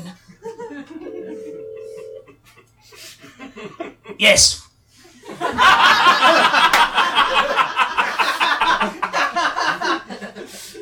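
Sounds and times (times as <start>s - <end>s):
laughter: 0.0s - 4.2s, 5.1s - 10.8s
steady electronic tone of a phone being dialed: 1.0s - 2.3s
speech: 3.6s - 4.6s.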